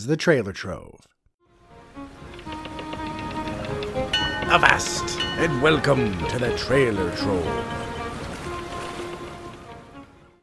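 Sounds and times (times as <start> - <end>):
speech: 0.0 - 1.1, 4.5 - 7.8
ocean waves and continuous surf: 1.7 - 10.4
sea shanty jingle: 3.1 - 9.9.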